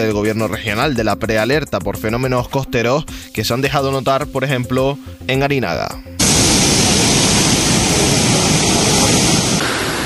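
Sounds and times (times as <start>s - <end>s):
speech: 0.0s - 6.1s
heavy sea waves surging onto a seafront promenade: 6.2s - 10.0s.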